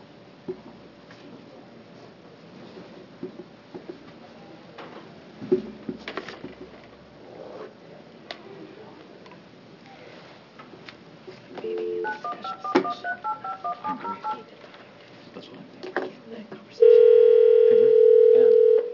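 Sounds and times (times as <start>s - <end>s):
telephone keypad dialing tones: 11.6s - 14.5s, 17.0s - 18.9s.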